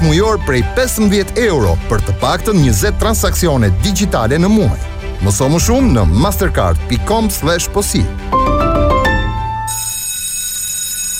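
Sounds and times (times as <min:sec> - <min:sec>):
speech: 0:00.1 - 0:08.4
bell ringing: 0:09.1 - 0:11.1.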